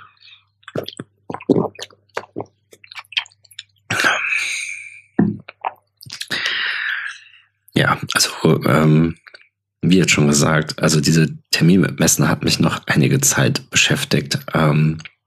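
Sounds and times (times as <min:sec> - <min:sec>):
person drinking with wet clicks and swallows: 0:00.6 - 0:04.4, 0:05.2 - 0:07.1
speech: 0:07.8 - 0:09.2, 0:09.8 - 0:15.1.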